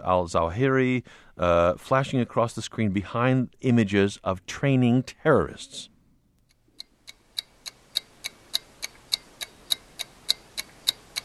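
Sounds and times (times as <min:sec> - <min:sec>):
speech: 0:00.0 - 0:05.9
ticking bomb clock in a political ad: 0:06.5 - 0:11.2.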